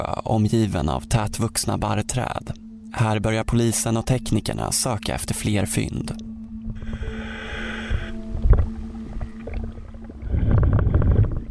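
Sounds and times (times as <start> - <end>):
speech: 0.0 - 6.3
steady low mechanical hum underwater: 0.0 - 11.4
tonal whine underwater: 0.0 - 11.4
underwater bubbling and gurgling: 6.6 - 11.4.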